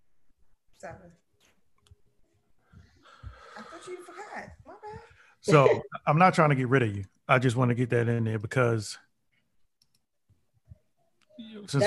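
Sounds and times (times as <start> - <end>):
speech: 0.8 - 1.3, 3.8 - 9.1, 11.4 - 11.8
keyboard typing clicks: 9.8 - 10.1.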